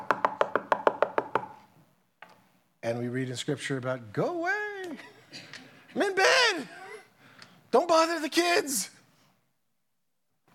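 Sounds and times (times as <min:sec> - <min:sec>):
knocking on a door: 0:00.0 - 0:01.5
speech: 0:02.8 - 0:05.4, 0:07.8 - 0:09.0.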